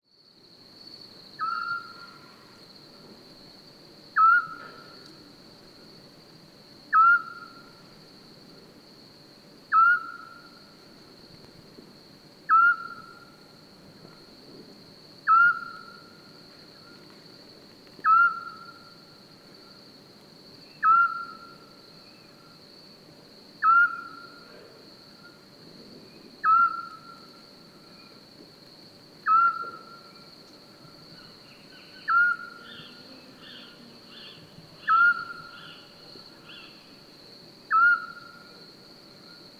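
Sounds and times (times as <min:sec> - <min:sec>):
scops owl calling: 0:01.4 - 0:02.2, 0:04.2 - 0:04.9, 0:06.9 - 0:07.6, 0:09.7 - 0:10.5, 0:12.5 - 0:13.2, 0:15.3 - 0:16.0, 0:18.0 - 0:18.9, 0:20.8 - 0:21.6, 0:23.6 - 0:24.4, 0:26.4 - 0:27.2, 0:29.2 - 0:30.2, 0:31.2 - 0:36.9, 0:37.7 - 0:38.5.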